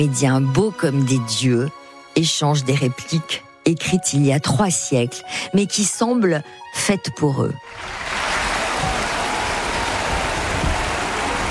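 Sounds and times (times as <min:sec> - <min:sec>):
speech: 0:00.0 - 0:08.2
large theatre audience applauding at the end of a play: 0:07.7 - 0:11.4.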